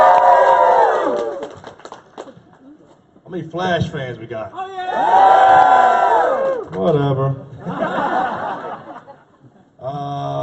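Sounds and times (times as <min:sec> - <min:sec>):
audience cheering and whooping: 0:00.0 - 0:01.7, 0:04.7 - 0:06.8
scattered claps: 0:01.2 - 0:02.6
speech: 0:03.3 - 0:05.7, 0:06.8 - 0:07.4
laughter: 0:07.6 - 0:09.5.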